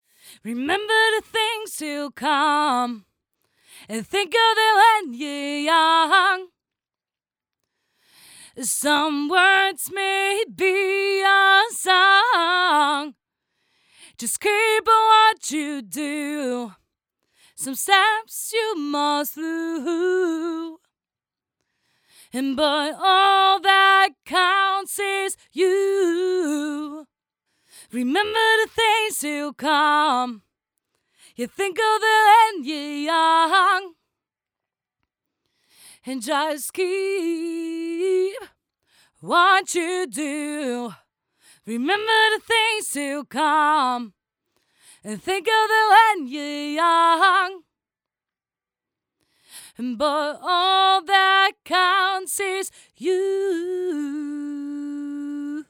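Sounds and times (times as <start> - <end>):
lead vocals: 0.3 - 3.0, 3.8 - 6.5, 8.2 - 13.2, 14.1 - 16.8, 17.6 - 20.8, 22.3 - 27.0, 27.8 - 30.4, 31.3 - 34.0, 36.0 - 38.5, 39.2 - 41.0, 41.6 - 44.1, 45.0 - 47.6, 49.6 - 55.6.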